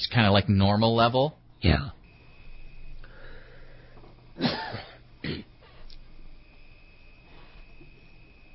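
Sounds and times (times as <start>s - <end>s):
speech: 0.0s - 2.0s
crickets chirping in outdoor ambience: 2.0s - 8.5s
person throat-clearing or coughing: 4.4s - 5.6s.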